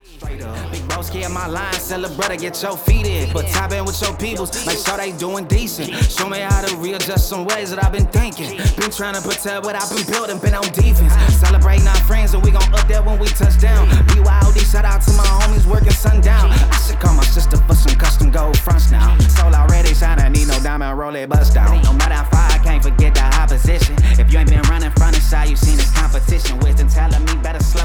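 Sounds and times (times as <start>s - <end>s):
dry hip hop mix: 0.0s - 27.8s.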